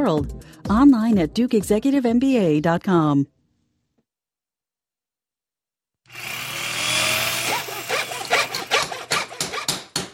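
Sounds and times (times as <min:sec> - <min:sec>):
speech: 0:00.0 - 0:03.4
droning power tool whirring: 0:06.1 - 0:10.1
hammer blows on wood: 0:08.5 - 0:10.1.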